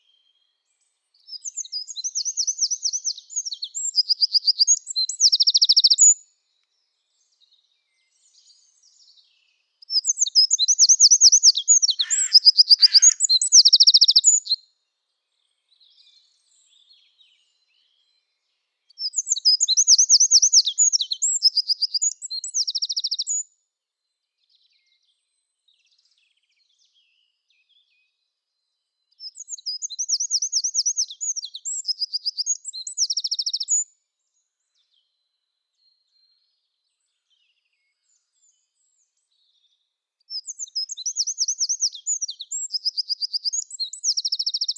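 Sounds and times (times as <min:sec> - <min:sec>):
Eurasian wren Troglodytes troglodytes singing typical song with trills: 0:01.4 - 0:06.2, 0:09.8 - 0:14.6, 0:19.0 - 0:23.4, 0:29.3 - 0:33.8, 0:40.3 - 0:44.7.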